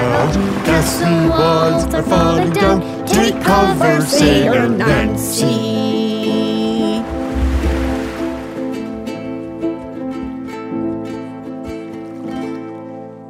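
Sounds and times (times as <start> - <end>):
ocean wave washing onto shore: 0.0 - 2.0, 7.0 - 9.4
steady tuneful music: 0.0 - 13.2
speech: 0.3 - 6.4.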